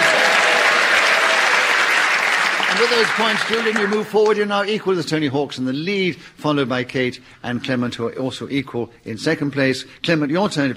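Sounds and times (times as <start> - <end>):
audience applause: 0.0 - 4.5
speech: 2.8 - 10.7.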